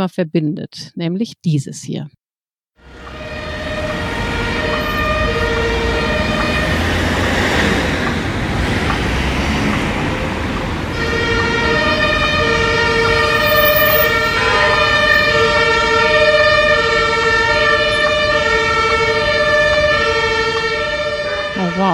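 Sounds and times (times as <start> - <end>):
speech: 0.0 - 2.2, 21.8 - 21.9
dense city traffic rumbling: 2.8 - 21.9
loud emergency siren wailing: 2.8 - 21.9.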